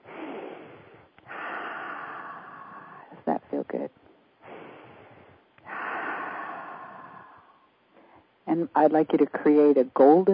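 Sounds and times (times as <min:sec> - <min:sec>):
slow deep breath during a guided relaxation exercise: 0:00.0 - 0:03.2, 0:04.4 - 0:08.4
speech: 0:03.3 - 0:04.1, 0:08.6 - 0:10.3.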